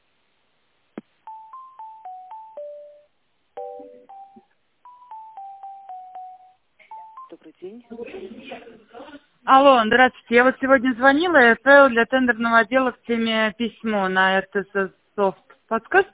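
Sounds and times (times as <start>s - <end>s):
telephone tone dialing keypad beeps on a company phone line: 1.3s - 7.4s
speech: 7.3s - 16.1s.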